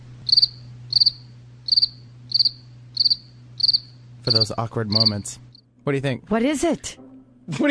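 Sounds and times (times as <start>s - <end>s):
low constant hum: 0.0s - 7.6s
crickets chirping sound effect: 0.2s - 5.7s
speech: 3.8s - 7.6s.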